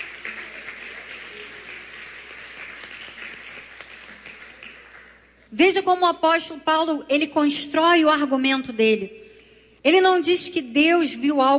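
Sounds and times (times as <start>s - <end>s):
crowd applauding during a sermon: 0.0s - 5.5s
speech: 5.5s - 9.2s, 9.8s - 11.5s.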